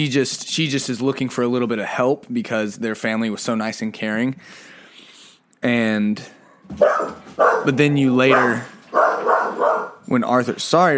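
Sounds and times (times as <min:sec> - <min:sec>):
speech: 0:00.0 - 0:04.8, 0:05.6 - 0:09.1, 0:10.1 - 0:10.9
dog barking: 0:06.4 - 0:10.0.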